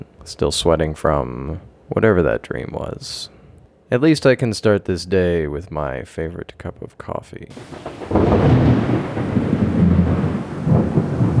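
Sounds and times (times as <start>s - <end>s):
faint hiss of rain: 0.0s - 11.3s
speech: 0.2s - 9.2s
thunder rumbling during a storm: 7.5s - 11.3s.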